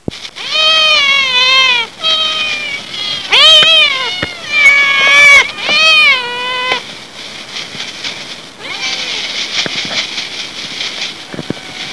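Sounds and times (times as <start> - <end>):
pet cat meowing at home: 0.4 - 6.8, 8.6 - 9.4.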